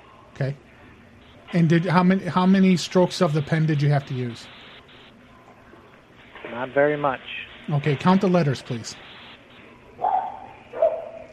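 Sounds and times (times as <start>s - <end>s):
speech: 0.4s - 0.7s, 1.5s - 4.6s, 6.6s - 9.1s
dog barking inside a business: 10.0s - 11.3s.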